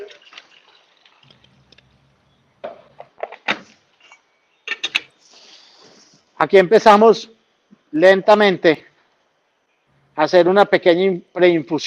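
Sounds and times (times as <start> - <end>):
water poured over ground coffee in a Chemex paper filter: 0.0 - 2.0
speech: 6.4 - 7.3, 7.9 - 8.9, 10.2 - 11.8.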